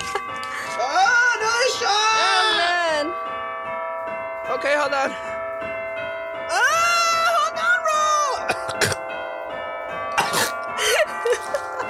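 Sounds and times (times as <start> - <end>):
bells ringing: 0.0 - 11.8
speech: 4.6 - 5.3.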